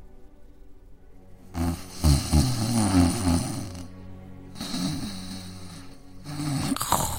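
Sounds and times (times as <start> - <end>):
wolf snoring loudly while napping: 1.5 - 3.9, 4.6 - 7.1.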